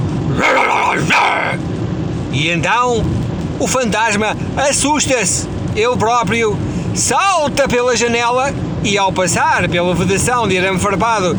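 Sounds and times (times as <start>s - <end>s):
person imitating fierce dog barks: 0.3s - 1.6s
speech: 2.4s - 11.3s.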